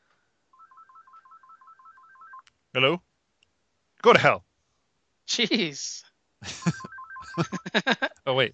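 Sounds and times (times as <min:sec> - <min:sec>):
phone ringtone of an incoming call: 0:00.5 - 0:02.4, 0:06.5 - 0:07.8
speech: 0:02.8 - 0:03.1, 0:04.0 - 0:04.5, 0:05.3 - 0:06.8, 0:07.4 - 0:08.5
laughter: 0:06.4 - 0:08.2.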